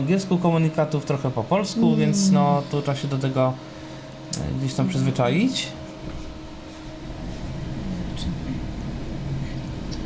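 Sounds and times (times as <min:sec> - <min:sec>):
speech: 0:00.0 - 0:06.2
clothes dryer running at its highest setting with low rumbling hum: 0:00.0 - 0:10.0.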